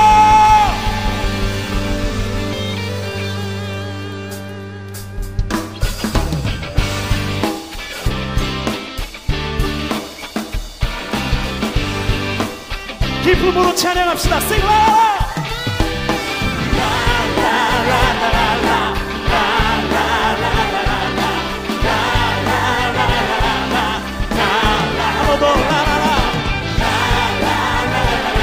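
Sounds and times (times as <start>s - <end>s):
audience clapping and cheering: 0.0s - 2.7s, 16.2s - 28.4s
crowd yelling and whooping: 0.0s - 3.2s, 14.6s - 28.4s
music with a sustained chord: 0.0s - 28.4s
speech: 13.8s - 15.1s.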